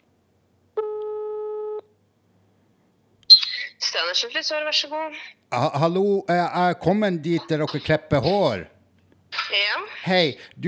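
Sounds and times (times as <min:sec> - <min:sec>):
telephone ringback tone on a call to a hair salon in Tromsø: 0:00.8 - 0:01.8
speech: 0:04.0 - 0:08.7, 0:09.5 - 0:10.6.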